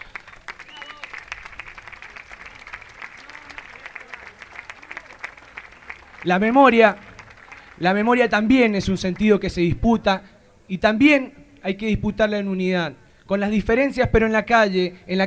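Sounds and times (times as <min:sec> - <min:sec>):
crowd applause in San Juan: 0:00.0 - 0:09.3
speech: 0:06.2 - 0:07.0, 0:07.8 - 0:15.2.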